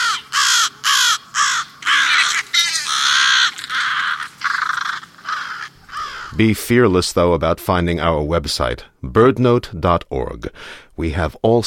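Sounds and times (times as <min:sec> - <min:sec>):
American crows cawing: 0:00.0 - 0:06.5
speech: 0:06.4 - 0:11.6.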